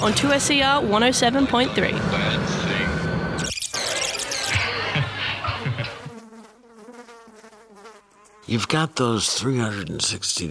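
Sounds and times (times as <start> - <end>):
speech: 0.0 - 2.7, 8.5 - 10.4
laughter: 4.2 - 6.2
fly buzzing in flight: 5.5 - 8.6.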